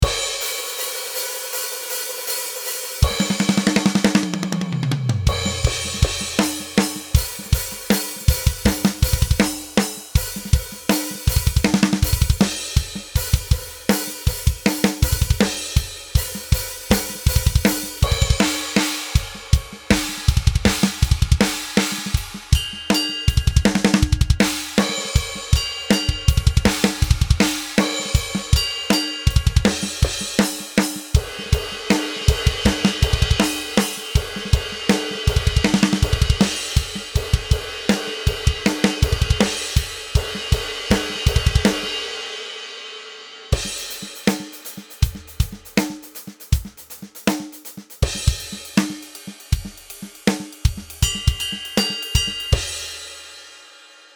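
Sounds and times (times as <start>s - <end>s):
cymbals: 0.0s - 54.1s.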